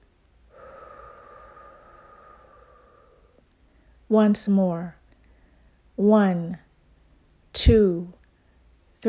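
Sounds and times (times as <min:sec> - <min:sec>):
slow breath: 0:00.0 - 0:04.1, 0:05.2 - 0:05.9
speech: 0:04.1 - 0:05.0, 0:06.0 - 0:06.6, 0:07.6 - 0:08.2.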